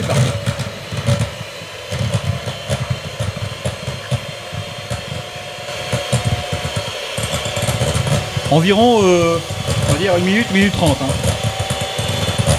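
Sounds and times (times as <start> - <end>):
electric hand mixer whipping on its first speed setting: 0.0 - 12.5
speech: 8.5 - 11.3.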